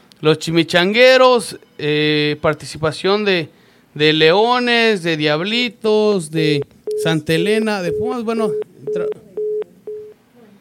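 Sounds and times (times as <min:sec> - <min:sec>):
speech: 0:00.2 - 0:09.2
telephone line beeps from a call failing to connect: 0:06.9 - 0:07.2, 0:07.9 - 0:10.2.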